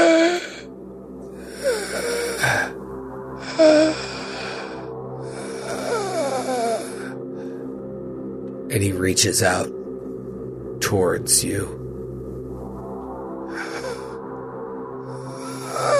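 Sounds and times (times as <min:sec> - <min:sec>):
person imitating labored wheezy gasping breaths: 0:00.0 - 0:00.7, 0:01.4 - 0:02.8, 0:03.4 - 0:07.7, 0:13.5 - 0:14.1, 0:15.1 - 0:15.9
speech: 0:08.8 - 0:09.8, 0:10.9 - 0:11.9.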